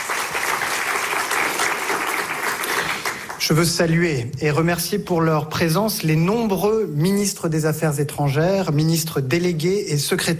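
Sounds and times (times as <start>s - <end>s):
sustained applause from a large audience: 0.0s - 3.5s
speech: 3.4s - 10.3s.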